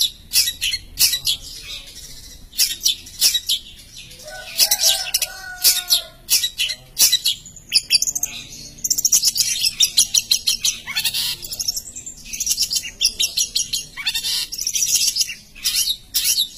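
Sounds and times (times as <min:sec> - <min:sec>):
Long-tailed shrike song of sharp high chips, harsh bursts and warbled phrases: 0:00.0 - 0:16.5.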